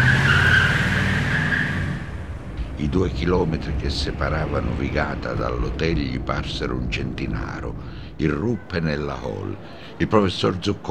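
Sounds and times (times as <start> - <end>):
car tyres skidding and squealing as a car drives off: 0.0 - 2.4
low car engine rumble: 0.0 - 10.8
speech: 2.8 - 10.8.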